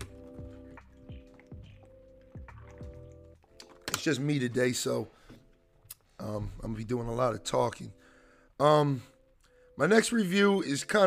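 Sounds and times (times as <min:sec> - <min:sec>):
person sipping and swallowing water: 0:00.0 - 0:03.8
soft wet gulps: 0:00.0 - 0:03.8
speech: 0:04.0 - 0:05.2, 0:06.3 - 0:08.0, 0:08.6 - 0:09.1, 0:09.8 - 0:11.0.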